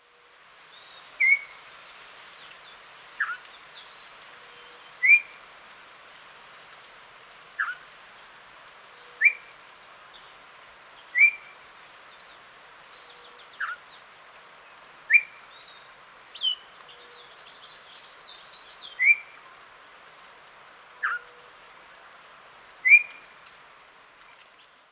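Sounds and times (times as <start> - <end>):
steady background hiss: 0.0 - 24.9
bird giving upslurred and downslurred chirps: 0.7 - 5.4, 7.6 - 8.3, 8.9 - 19.5, 21.0 - 21.5, 22.8 - 23.4.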